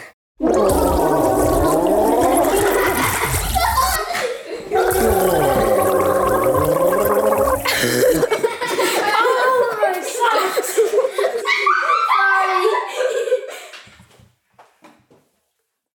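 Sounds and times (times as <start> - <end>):
person gargling water to imitate gurgling: 0.4 - 4.1, 4.7 - 8.3
laughter: 2.3 - 13.9.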